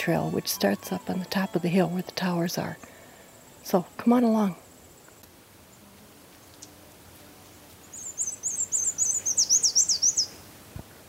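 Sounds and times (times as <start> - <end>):
speech: 0.0 - 2.9, 3.6 - 4.6
black-and-white warbler singing: 0.0 - 4.9, 7.8 - 10.5.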